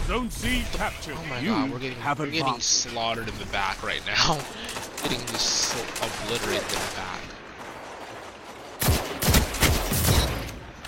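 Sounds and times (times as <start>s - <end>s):
speech: 0.1s - 7.3s
video game gunfire: 4.2s - 10.7s.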